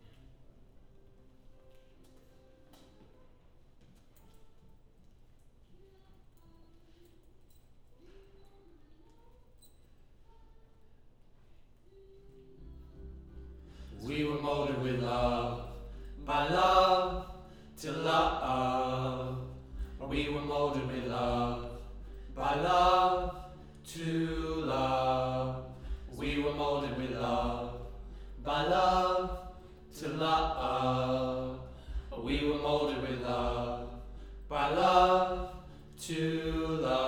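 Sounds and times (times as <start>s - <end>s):
choir harmony in low and mid register: 12.8s - 37.0s.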